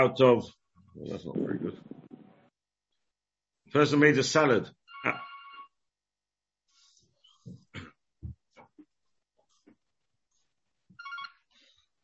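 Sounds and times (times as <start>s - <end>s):
speech: 0.0s - 2.0s, 3.7s - 5.2s
telephone ringing in bright electronic bursts: 4.9s - 5.7s, 11.0s - 11.4s.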